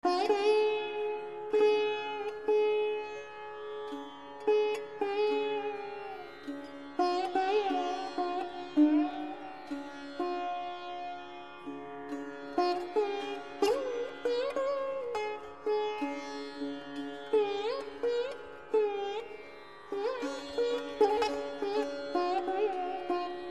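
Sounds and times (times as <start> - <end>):
sitar: 0.0 - 23.4.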